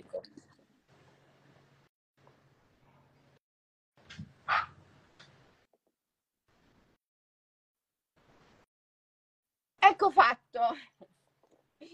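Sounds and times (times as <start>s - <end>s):
small dog giving sharp high yipping barks behind a closed door: 4.5s - 4.8s
speech: 10.0s - 11.0s.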